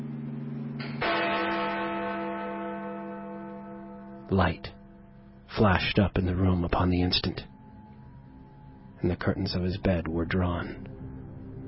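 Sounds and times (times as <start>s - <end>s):
deep hollow church bell striking: 0.0s - 8.9s
speech: 4.3s - 4.8s, 5.6s - 7.5s, 9.0s - 11.0s.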